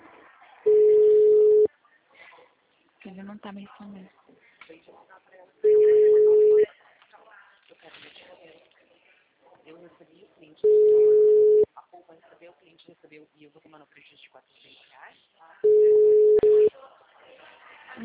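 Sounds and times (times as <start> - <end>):
telephone ringback tones of a placed call: 0.7 - 1.7, 5.6 - 6.7, 10.6 - 11.6, 15.6 - 16.7
speech: 3.4 - 6.0, 9.6 - 11.4, 12.0 - 16.3.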